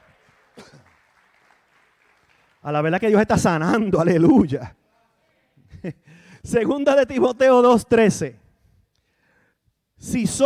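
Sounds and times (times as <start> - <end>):
roomful of people applauding: 0.0 - 3.1
speech: 2.6 - 4.8, 5.8 - 8.4, 10.0 - 10.4.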